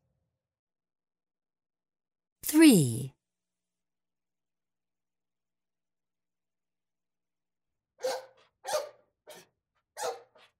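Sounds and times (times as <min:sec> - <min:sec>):
speech: 0:02.4 - 0:03.1
dog barking at the door: 0:08.0 - 0:10.5.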